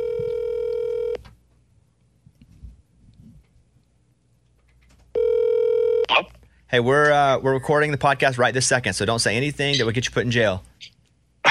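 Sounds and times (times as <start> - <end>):
buzzing telephone ringback tones on the caller's end: 0.0 - 1.2, 5.2 - 6.1
speech: 6.7 - 11.0.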